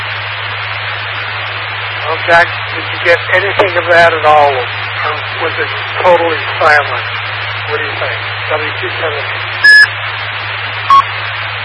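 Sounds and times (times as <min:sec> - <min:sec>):
low hum: 0:00.0 - 0:11.6
radio static hiss: 0:00.0 - 0:11.6
speech: 0:02.2 - 0:09.6
brief tone blip: 0:09.6 - 0:09.9, 0:10.9 - 0:11.1
short electronic radio roger beep: 0:09.6 - 0:09.9, 0:10.9 - 0:11.1.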